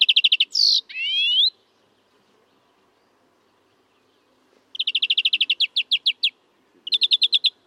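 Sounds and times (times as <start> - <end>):
European greenfinch Chloris chloris trilling: 0.0 - 1.6, 4.7 - 7.6.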